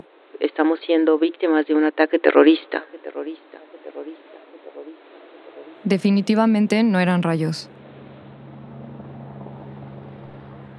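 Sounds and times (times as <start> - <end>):
speech: 0.6 - 3.4, 5.8 - 7.7
helicopters approaching with dense rotor roar: 7.7 - 10.7.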